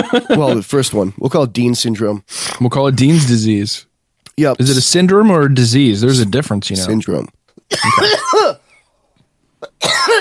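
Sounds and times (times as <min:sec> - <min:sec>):
speech: 0:00.0 - 0:08.6
person coughing: 0:07.7 - 0:08.8, 0:09.6 - 0:10.2.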